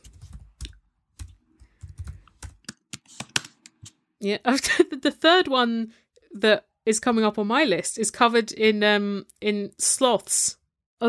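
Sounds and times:
typing on a computer keyboard: 0:00.0 - 0:03.6
speech: 0:04.2 - 0:11.0.

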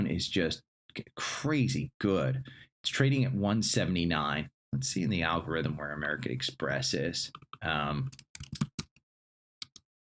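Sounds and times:
speech: 0:00.2 - 0:08.7
typing on a computer keyboard on a mobile setup: 0:08.1 - 0:09.0.

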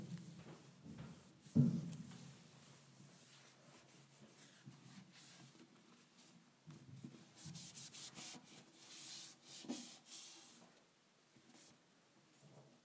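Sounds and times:
wipe rubbing a counter: 0:00.1 - 0:06.4, 0:07.0 - 0:10.7.

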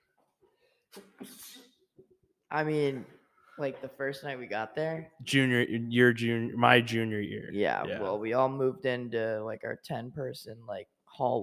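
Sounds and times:
loud sneeze: 0:01.0 - 0:01.7
speech: 0:02.5 - 0:11.4.

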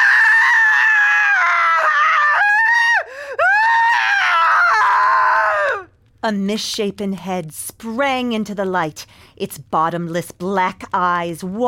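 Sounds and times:
woman's shrill blood-curdling scream: 0:00.0 - 0:05.9
speech: 0:06.2 - 0:11.6.

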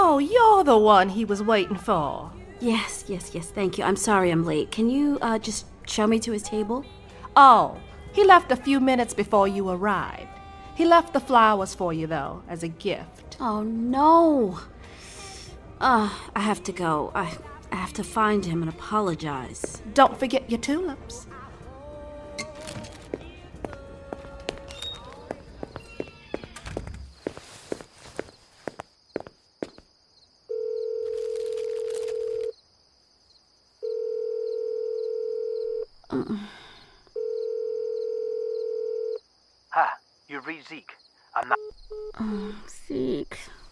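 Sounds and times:
speech: 0:00.2 - 0:14.7, 0:15.8 - 0:21.3, 0:40.6 - 0:43.6
footsteps: 0:22.4 - 0:29.9
rustling: 0:27.0 - 0:29.0
ringback tones on an outgoing phone call: 0:30.5 - 0:32.5, 0:33.8 - 0:35.9, 0:37.2 - 0:39.2.

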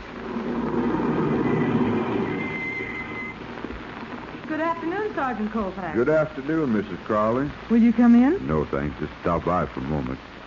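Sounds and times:
car driving up with engine rumbling: 0:00.0 - 0:05.3
faint high whine: 0:00.0 - 0:10.4
speech: 0:04.7 - 0:10.3.

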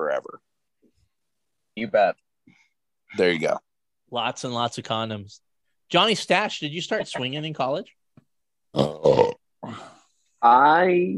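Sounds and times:
speech: 0:01.8 - 0:02.2, 0:03.1 - 0:08.0, 0:08.7 - 0:09.2, 0:10.4 - 0:11.1
person burping: 0:08.7 - 0:10.0.

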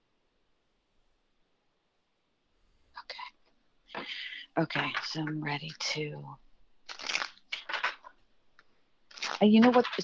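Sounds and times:
speech: 0:04.6 - 0:06.4, 0:09.4 - 0:10.0
cards being shuffled with papery riffling: 0:06.9 - 0:10.0.

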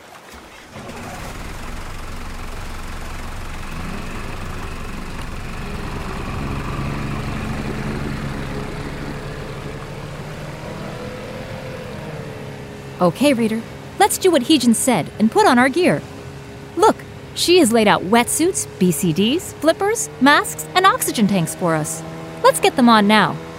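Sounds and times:
dive boat motor running: 0:00.4 - 0:23.5
speech: 0:13.0 - 0:16.1, 0:16.8 - 0:23.5.

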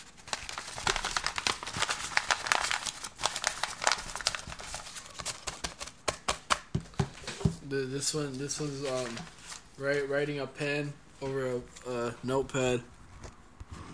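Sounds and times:
paper being rolled up: 0:00.0 - 0:06.0, 0:08.3 - 0:09.7
speech: 0:07.7 - 0:12.9.

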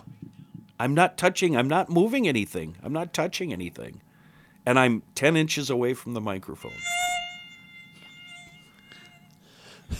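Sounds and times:
speech: 0:00.8 - 0:04.0, 0:04.7 - 0:07.0
mosquito buzzing: 0:06.6 - 0:09.4.

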